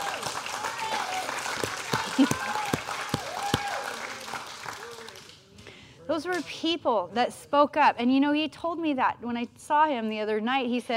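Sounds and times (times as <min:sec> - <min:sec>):
crowd applauding: 0:00.0 - 0:05.5
speech: 0:06.2 - 0:10.9.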